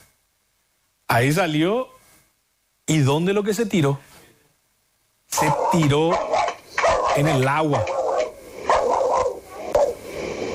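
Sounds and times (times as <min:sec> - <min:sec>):
steady noise: 0:00.0 - 0:10.5
speech: 0:01.1 - 0:01.9, 0:02.9 - 0:04.1, 0:05.3 - 0:06.4, 0:07.2 - 0:08.0
small dog barking during a caiman sighting: 0:05.4 - 0:10.0.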